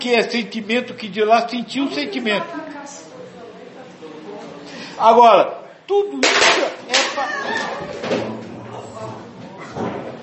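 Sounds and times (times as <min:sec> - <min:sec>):
speech: 0:00.0 - 0:03.1, 0:05.0 - 0:08.3
people's voices murmuring: 0:00.0 - 0:10.2
chair breaking with a heavy thud and cracking impact: 0:06.2 - 0:08.4.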